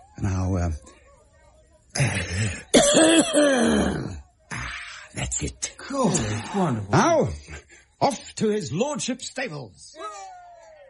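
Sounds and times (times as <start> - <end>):
speech: 0.2 - 1.0, 2.0 - 4.2, 5.2 - 10.3
person raspy coughing and clearing throat: 2.0 - 4.2.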